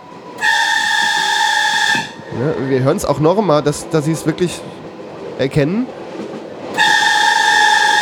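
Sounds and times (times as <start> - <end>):
train whistle at a level crossing: 0.0 - 2.9, 6.7 - 7.9
speech: 2.4 - 4.8, 5.4 - 6.0.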